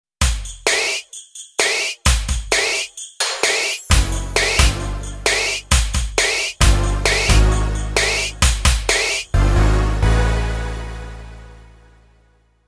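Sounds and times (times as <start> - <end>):
SPD 20 electronic synth drum kit: 0.2 - 9.6.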